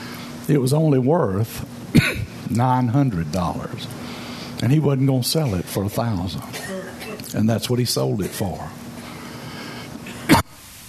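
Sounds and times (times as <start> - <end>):
faint hiss: 0.0 - 10.8
speech: 0.5 - 6.7, 7.3 - 8.9
single short sharp cough: 1.9 - 2.4, 6.5 - 7.2, 10.0 - 10.6.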